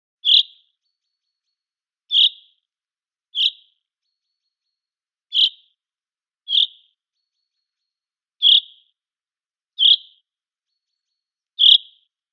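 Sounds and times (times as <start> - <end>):
common chaffinch short bright calls: 0.2 - 2.6, 3.3 - 5.8, 6.5 - 7.7, 8.4 - 8.9, 9.8 - 12.1.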